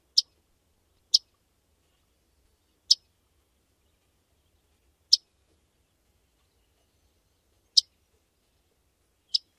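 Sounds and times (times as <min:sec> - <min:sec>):
Myrtle tchep calls: 0:07.7 - 0:08.0, 0:09.3 - 0:09.5.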